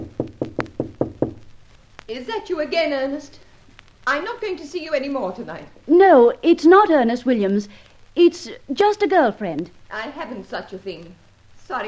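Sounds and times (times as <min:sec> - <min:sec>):
soft knocks on a wooden door: 0:00.0 - 0:01.4
speech: 0:02.1 - 0:11.8.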